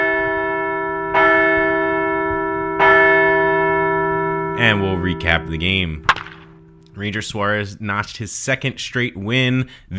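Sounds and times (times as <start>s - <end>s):
large bell ringing: 0.0s - 7.6s
speech: 4.6s - 6.1s, 7.0s - 9.9s.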